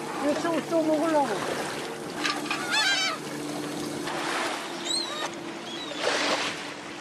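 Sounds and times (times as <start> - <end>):
fishing boat engine drone: 0.0 - 6.9
water splashing: 0.0 - 6.9
speech: 0.4 - 1.8
seagulls squawking around a fishing boat: 2.3 - 3.4, 4.6 - 6.1.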